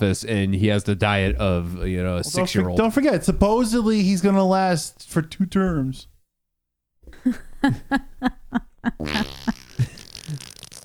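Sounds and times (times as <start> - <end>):
speech: 0.0 - 6.1, 7.1 - 10.5
laughter: 7.1 - 10.4
short buzzy fart sounds and a sputtering raspy blast: 9.0 - 10.8.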